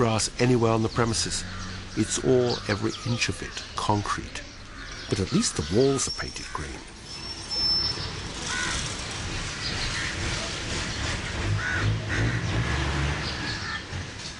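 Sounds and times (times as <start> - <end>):
speech: 0.0 - 4.4, 5.1 - 7.0
rumble of traffic and idling engines: 0.0 - 14.3
crows cawing: 1.4 - 3.6, 4.6 - 6.7, 8.4 - 10.3, 11.2 - 12.5, 13.4 - 14.3.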